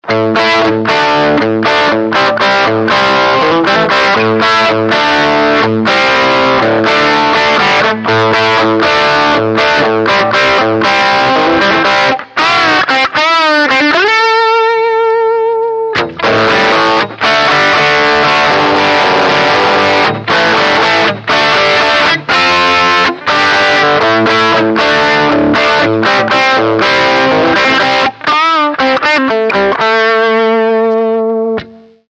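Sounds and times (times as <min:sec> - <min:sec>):
bright guitar lick through a Hiwatt C50 amp: 0:00.0 - 0:32.0.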